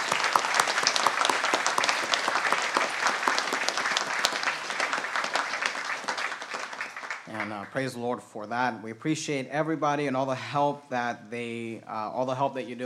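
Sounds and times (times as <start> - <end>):
congregation applauding: 0.0 - 8.1
speech: 7.7 - 12.8.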